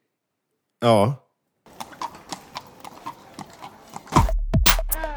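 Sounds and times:
speech: 0.8s - 1.2s
horse hooves clip-clopping: 1.7s - 5.0s.

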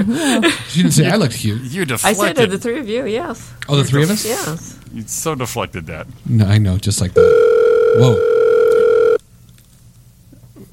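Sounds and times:
speech: 0.0s - 8.4s
telephone ringing with an electronic tone: 7.2s - 9.2s.

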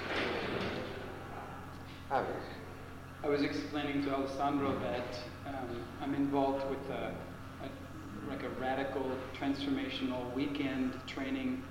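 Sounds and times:
sliding door scraping shut: 0.0s - 1.2s
speech: 2.1s - 2.6s, 3.2s - 11.6s.

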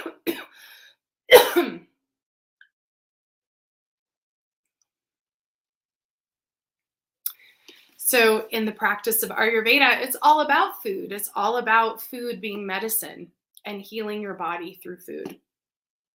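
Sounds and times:
person coughing: 0.0s - 0.6s, 1.3s - 1.9s
speech: 8.1s - 15.4s.

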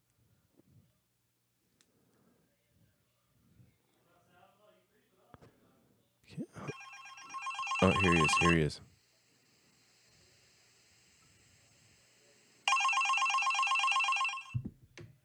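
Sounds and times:
telephone ringing during outgoing call: 6.6s - 8.8s, 12.7s - 14.6s
speech: 7.8s - 8.9s.

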